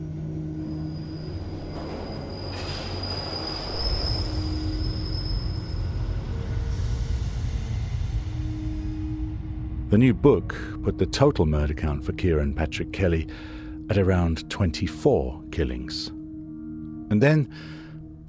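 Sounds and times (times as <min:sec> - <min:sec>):
tube train wheels squealing high-pitched: 0:00.0 - 0:07.1
London Underground tube train rumbling past: 0:00.0 - 0:11.2
speech: 0:09.9 - 0:16.2, 0:17.1 - 0:18.2.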